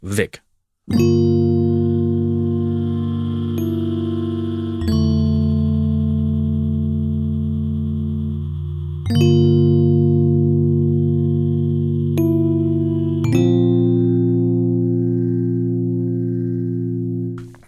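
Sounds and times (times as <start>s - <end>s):
speech: 0.0s - 1.6s
sustained synthesizer tones with shimmering overtones: 0.9s - 17.6s.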